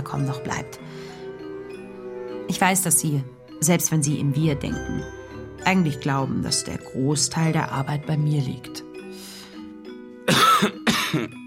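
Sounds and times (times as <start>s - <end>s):
speech: 0.1s - 1.2s, 2.5s - 9.3s, 10.6s - 11.4s
harsh broadband coughs: 10.2s - 11.4s.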